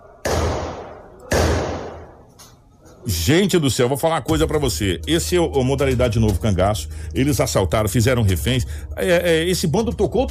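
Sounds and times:
gunshots echoing through a town: 0.2 - 2.2
speech: 3.0 - 10.3.

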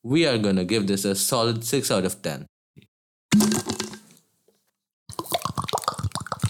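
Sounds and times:
speech: 0.0 - 2.5
person gulping water: 3.3 - 4.2, 5.1 - 6.4.

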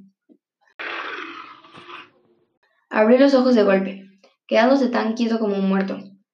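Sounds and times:
loud rasping beast growl: 0.8 - 2.5
speech: 3.0 - 6.1.

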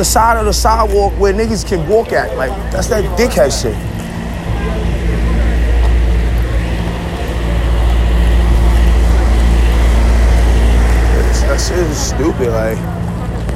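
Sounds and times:
speech: 0.0 - 4.0, 12.2 - 13.0
city traffic rumble on 3rd Avenue: 0.0 - 13.5
heavy low bus engine drone: 0.0 - 13.5.

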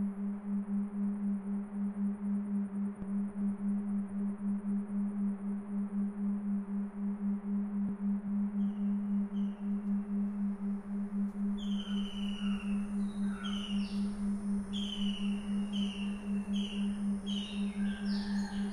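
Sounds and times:
steady low electrical-sounding hum: 0.0 - 18.7
birds chirping and calling: 11.6 - 18.7.

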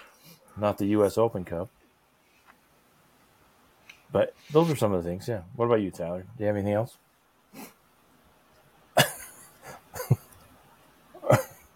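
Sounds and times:
speech: 0.6 - 1.8, 4.1 - 7.8
person coughing harshly: 9.0 - 9.4, 11.2 - 11.7.

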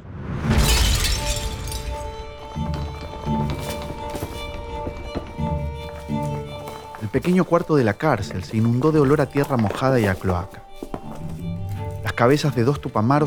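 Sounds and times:
scattered thuds and clattering tile pieces: 0.5 - 4.4
four floor tiles shattering as a tunnel breaks through: 0.5 - 6.4
speech: 7.1 - 10.7, 12.2 - 13.2.

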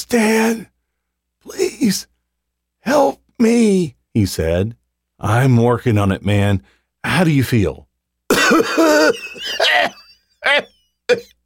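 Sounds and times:
speech: 0.1 - 0.7, 1.4 - 2.1, 2.8 - 7.9, 8.5 - 11.4
person coughing harshly with raspy wheezing: 8.3 - 10.0.

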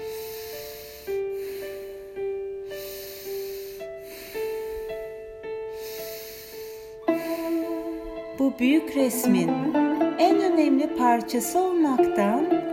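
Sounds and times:
slow airy breathing in and out through the nose: 0.0 - 7.9
soft sustained music: 0.0 - 12.7
speech: 8.4 - 12.7.

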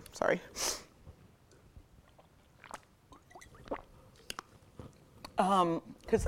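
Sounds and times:
speech: 0.2 - 0.7, 5.4 - 6.2
person sipping water: 1.5 - 5.0
mouth clicks and swallows: 1.5 - 5.4.

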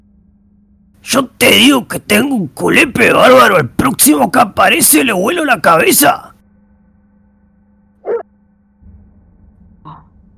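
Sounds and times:
low steady hum: 0.0 - 10.3
speech: 1.1 - 6.3
dog barking: 8.0 - 8.3.

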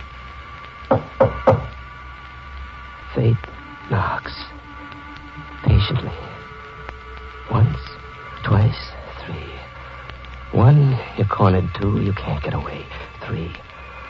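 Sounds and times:
sharp knocks on a door: 0.9 - 1.7
drawn-out voice-like tones: 3.1 - 4.7, 5.4 - 9.7
speech: 3.2 - 4.0, 11.4 - 13.7.

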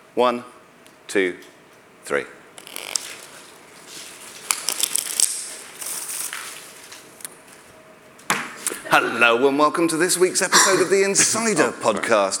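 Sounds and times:
speech: 0.2 - 1.5, 2.1 - 2.4, 8.9 - 12.3
playing cards being riffle shuffled and cascaded in a waterfall: 2.6 - 7.1
laughter: 10.5 - 11.6.

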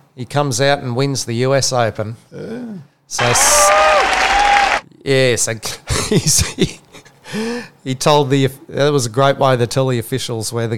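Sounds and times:
speech: 0.2 - 4.1, 5.0 - 10.7
crowd cheering and applause: 3.2 - 4.8.

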